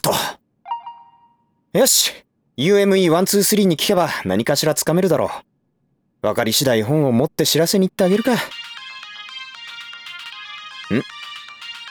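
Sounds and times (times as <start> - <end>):
mobile phone ringtone for an incoming call: 0.7 - 1.4, 8.1 - 11.8
speech: 1.7 - 5.5, 6.2 - 8.6, 10.9 - 11.2.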